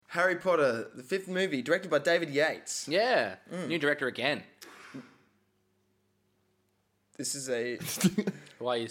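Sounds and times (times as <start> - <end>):
speech: 0.1 - 5.1, 7.2 - 8.8
harsh cough from someone in the house: 7.8 - 8.4.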